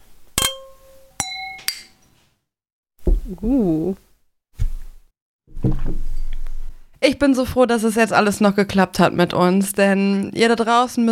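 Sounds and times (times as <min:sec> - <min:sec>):
glasses clinking together in a toast: 0:00.4 - 0:02.1
soft thump: 0:03.0 - 0:03.3
speech: 0:03.3 - 0:04.1, 0:07.0 - 0:11.1.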